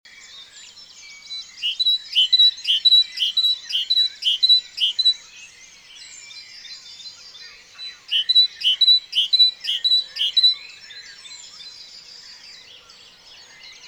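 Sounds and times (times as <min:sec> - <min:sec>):
great tit Parus major singing: 0:01.5 - 0:05.4, 0:07.9 - 0:10.9.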